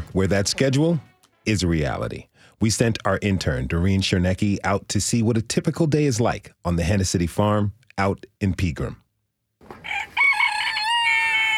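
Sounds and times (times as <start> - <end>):
speech: 0.2 - 9.0
rooster crowing on a farm in Pegram: 9.8 - 11.5.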